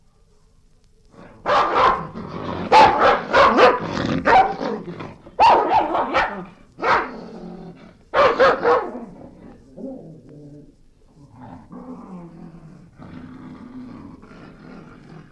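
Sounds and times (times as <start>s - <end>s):
angry dog growling and snapping: 1.1s - 5.4s, 6.1s - 15.2s
dog barking: 1.4s - 4.6s, 5.4s - 7.2s, 8.1s - 9.1s.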